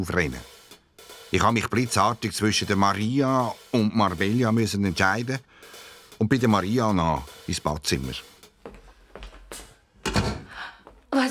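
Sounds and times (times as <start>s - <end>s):
speech: 0.0s - 0.5s, 1.3s - 8.3s
door pulled shut with a solid thunk: 10.0s - 10.5s.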